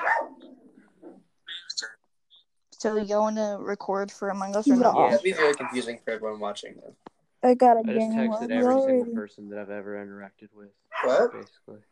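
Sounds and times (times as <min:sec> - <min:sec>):
dog barking: 0:00.0 - 0:00.5, 0:10.9 - 0:11.5
speech: 0:02.8 - 0:11.9.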